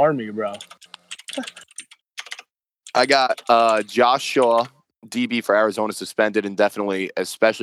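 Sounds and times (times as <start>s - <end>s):
speech: 0.0s - 1.7s, 3.0s - 7.6s
typing on a computer keyboard: 0.5s - 4.7s.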